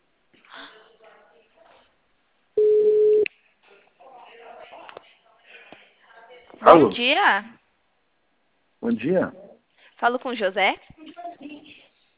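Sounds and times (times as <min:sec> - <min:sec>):
low-pitched telephone ringback tone while placing a call: 0:02.6 - 0:03.2
speech: 0:06.6 - 0:07.6, 0:08.8 - 0:09.4, 0:10.0 - 0:11.2.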